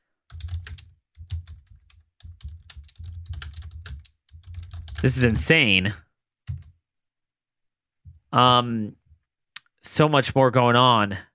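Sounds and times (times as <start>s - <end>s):
rapid typing on a computer keyboard: 0.3s - 5.1s, 6.5s - 6.7s
speech: 5.0s - 6.0s, 8.4s - 9.0s, 9.9s - 11.3s.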